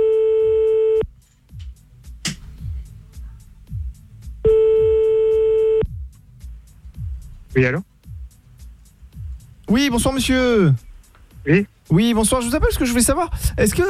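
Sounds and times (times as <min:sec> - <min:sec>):
faint low sounds: 0:00.0 - 0:13.8
ringback tone while a telephone call is being placed: 0:04.5 - 0:05.8
speech: 0:07.6 - 0:07.9, 0:09.7 - 0:10.8, 0:11.4 - 0:13.8.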